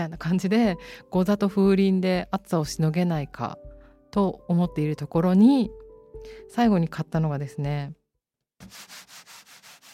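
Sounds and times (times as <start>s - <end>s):
speech: 0.0s - 8.0s, 8.6s - 9.3s
traditional Japanese bashō paper rustling: 8.6s - 9.9s.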